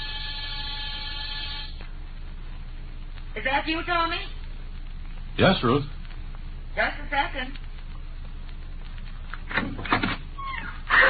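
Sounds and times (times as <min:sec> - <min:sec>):
apartment door buzzer buzzing: 0:00.0 - 0:01.7
low hum: 0:00.0 - 0:11.0
speech: 0:03.4 - 0:04.4, 0:05.4 - 0:06.0, 0:06.8 - 0:07.6.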